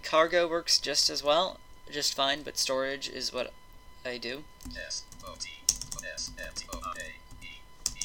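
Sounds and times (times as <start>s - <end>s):
speech: 0.1s - 7.2s
typing on a computer keyboard: 4.6s - 8.0s.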